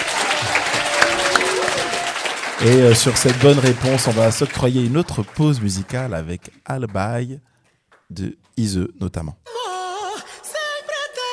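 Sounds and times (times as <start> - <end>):
audience applause for a correct quiz answer: 0.0 - 7.0
speech: 2.6 - 7.5, 8.1 - 9.6.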